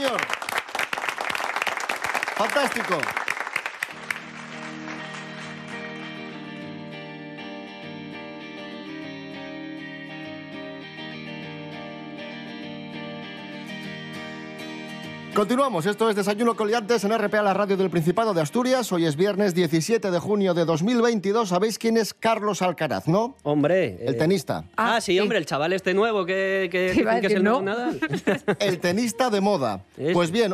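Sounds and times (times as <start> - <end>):
enthusiastic audience applause: 0.0 - 6.7
speech: 2.4 - 3.2, 15.4 - 30.5
steady instrumental music: 3.8 - 20.2
laughter: 27.4 - 29.5.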